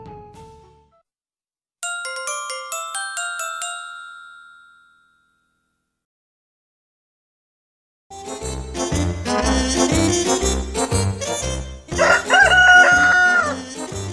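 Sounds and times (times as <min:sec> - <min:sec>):
steady bouncy music track with a thumping beat: 0:08.4 - 0:14.1
rooster crowing: 0:12.0 - 0:13.7.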